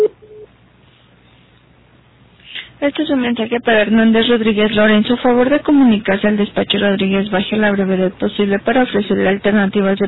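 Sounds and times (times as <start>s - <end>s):
voicemail beep tone: 0.0s - 0.5s
speech: 2.8s - 10.0s.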